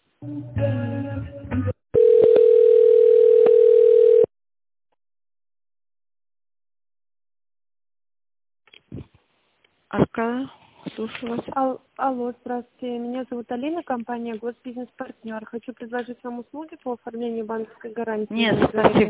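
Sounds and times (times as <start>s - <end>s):
speech: 0.2s - 0.8s, 11.3s - 19.0s
steady telephone tone while a call is transferred to another line: 2.0s - 4.3s.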